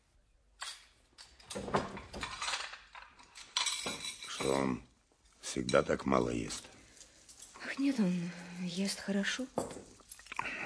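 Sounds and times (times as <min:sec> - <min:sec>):
speech: 0:01.5 - 0:01.8, 0:04.4 - 0:04.9, 0:05.5 - 0:06.8, 0:07.8 - 0:09.8
plates and dishes clinking onto a table: 0:01.6 - 0:04.8, 0:09.5 - 0:10.0.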